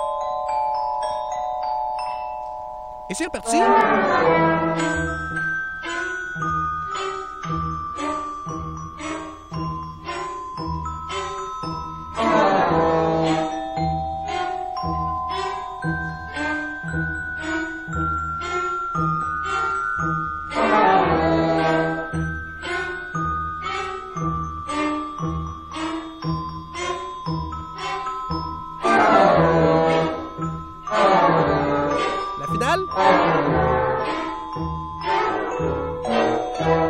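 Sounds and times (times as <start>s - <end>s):
doorbell chimes played as a musical instrument: 0.0s - 36.8s
busy musical backing: 3.1s - 5.2s, 32.2s - 33.4s
speech: 3.1s - 5.2s.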